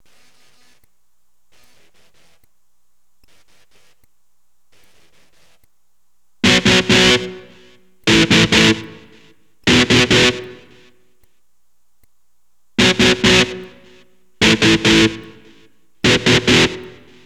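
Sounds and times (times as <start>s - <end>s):
electric guitar: 6.4s - 10.9s, 12.8s - 17.2s.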